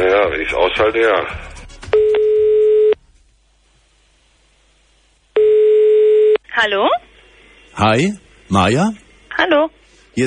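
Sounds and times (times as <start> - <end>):
speech: 0.0 - 1.6, 6.6 - 7.0, 7.8 - 10.2
ringing tone of an outgoing phone call: 2.0 - 3.0, 5.4 - 6.4.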